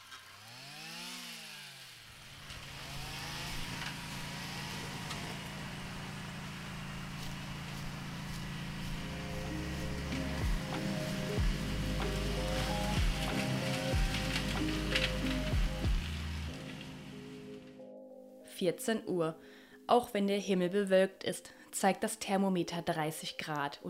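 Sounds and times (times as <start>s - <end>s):
brush cutters clearing grass and young tree saplings from a reptile habitat: 0.0s - 17.8s
speech: 18.6s - 23.8s.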